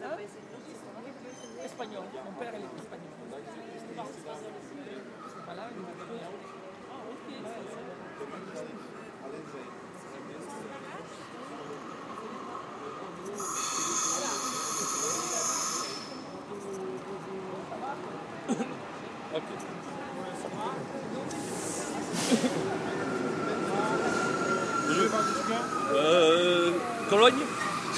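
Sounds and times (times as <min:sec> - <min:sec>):
people talking on a railway platform: 0:07.0 - 0:27.9
train hissing and rumbling at a railway platform: 0:12.0 - 0:16.6, 0:21.1 - 0:27.9.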